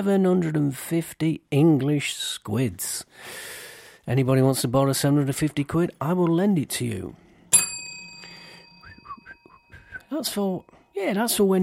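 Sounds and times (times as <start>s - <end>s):
speech: 0.0s - 7.2s, 10.1s - 11.6s
desk bell struck hard: 7.5s - 9.9s
faint chirpy whistle-like sounds: 8.8s - 10.1s.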